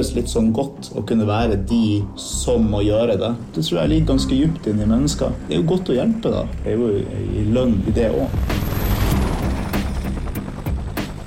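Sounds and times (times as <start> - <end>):
speech: 0.0 - 8.8
rescue helicopter in flight: 4.3 - 11.2.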